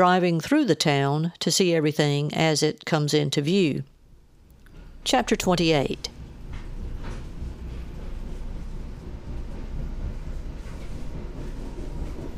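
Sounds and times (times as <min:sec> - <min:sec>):
speech: 0:00.0 - 0:03.9, 0:05.0 - 0:06.1
train riding along the rails to Virginia heard from inside the carriage: 0:04.8 - 0:12.3
faint rhythmic clacks and rattles of a train: 0:06.0 - 0:12.3.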